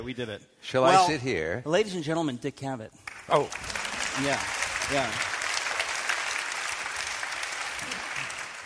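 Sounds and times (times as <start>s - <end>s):
speech: 0.0s - 5.3s
audience applause as performers get on stage: 3.0s - 8.6s.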